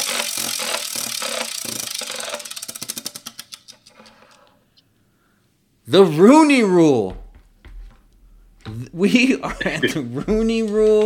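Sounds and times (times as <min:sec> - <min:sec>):
prize wheel clicking as it spins: 0:00.0 - 0:03.8
speech: 0:05.9 - 0:07.2, 0:09.0 - 0:11.0.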